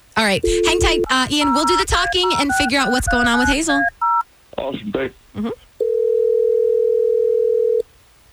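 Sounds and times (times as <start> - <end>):
speech: 0.2 - 4.0, 4.6 - 5.6
outgoing telephone call ringing tone: 0.4 - 4.2, 5.8 - 7.8.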